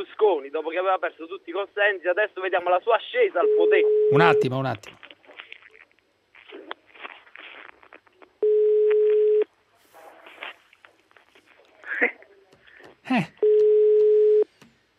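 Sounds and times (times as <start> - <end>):
speech: 0.3 - 5.0, 13.1 - 13.3
telephone ringing with electronic ring tones: 3.4 - 4.6, 8.5 - 9.5, 13.4 - 14.5.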